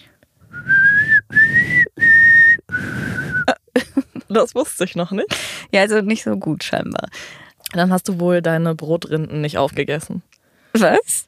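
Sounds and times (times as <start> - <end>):
person whistling a short four-note signal tune: 0.6 - 3.5
speech: 4.4 - 11.2.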